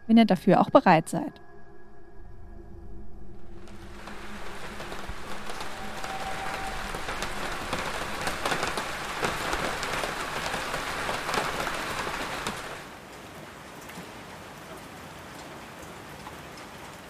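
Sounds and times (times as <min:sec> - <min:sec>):
speech: 0:00.1 - 0:01.4
heavy rain pouring on a hard surface: 0:03.5 - 0:17.0.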